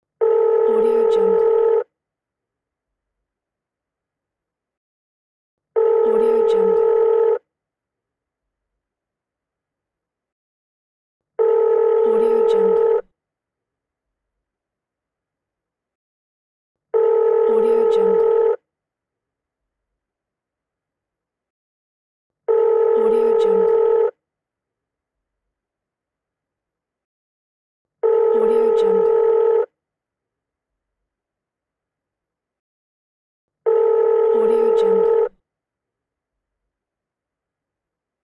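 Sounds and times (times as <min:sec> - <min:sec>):
phone ringing: 0:00.2 - 0:01.8, 0:05.8 - 0:07.4, 0:11.4 - 0:13.0, 0:17.0 - 0:18.6, 0:22.5 - 0:24.1, 0:28.0 - 0:29.6, 0:33.7 - 0:35.3.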